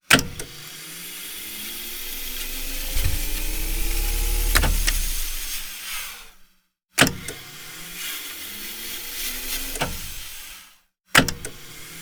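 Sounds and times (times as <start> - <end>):
tape machine fast forwarding and stopping: 1.3 - 5.7.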